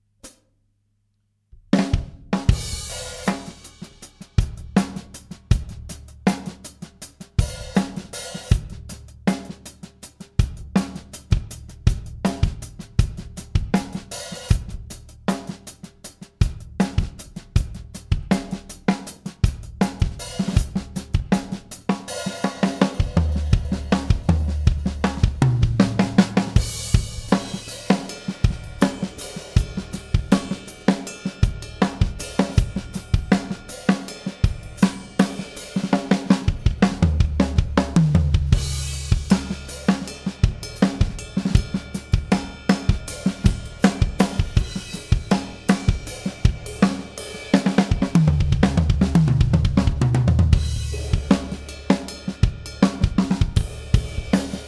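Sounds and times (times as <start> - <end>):
drum test with reverb and bus compression: 1.6 - 54.6.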